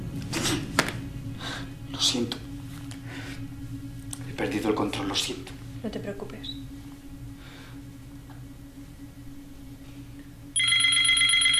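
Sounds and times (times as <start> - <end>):
speech: 2.0 - 2.4, 4.4 - 6.6
telephone ringing with a bright electronic trill: 10.6 - 11.5.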